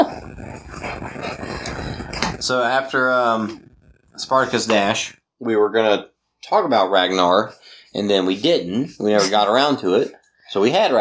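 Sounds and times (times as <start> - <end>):
dogs snarling and growling in a fight: 0.0 - 5.2, 6.7 - 10.2
speech: 2.4 - 10.9.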